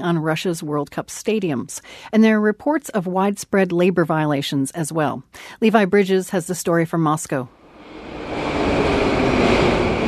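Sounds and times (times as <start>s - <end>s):
speech: 0.0s - 7.6s
metro train pulling into an underground station in Moscow in the morning: 7.6s - 10.0s.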